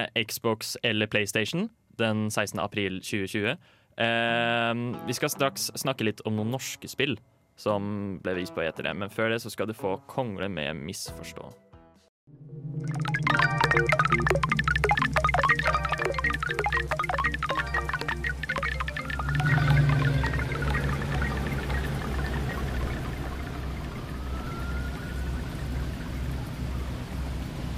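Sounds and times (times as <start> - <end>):
speech: 0.0 - 11.6
dense drips and splashes: 12.8 - 27.7
softly pulsing bass: 13.0 - 27.1
steady rain pattering in a game trailer: 13.0 - 27.7
low sustained drone: 19.0 - 27.7.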